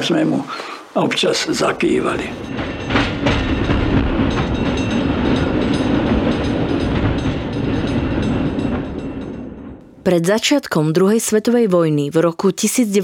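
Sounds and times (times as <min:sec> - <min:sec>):
speech: 0:00.0 - 0:02.8, 0:10.1 - 0:13.0
train passing on rails: 0:00.4 - 0:10.3
train wheels clickety-clacking over track joints: 0:01.4 - 0:09.8.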